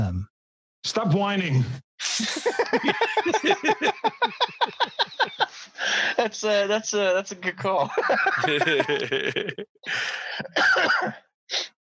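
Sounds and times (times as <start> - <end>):
speech: 0.8 - 11.8
person laughing loudly: 2.0 - 6.3, 7.6 - 11.0
person coughing harsh breathy bursts while laughing: 10.0 - 11.7.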